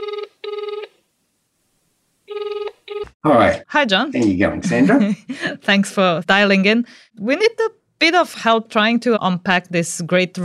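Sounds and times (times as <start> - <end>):
buzzy trilling ringback tone of an outgoing phone call: 0.0 - 1.0, 2.3 - 3.1
speech: 3.2 - 10.4.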